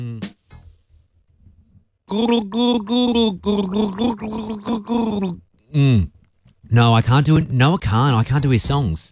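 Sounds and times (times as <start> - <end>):
person gargling: 0.0 - 0.3, 2.1 - 6.1
brief vocal sounds: 0.0 - 0.4, 2.1 - 6.1
speech: 2.1 - 9.1.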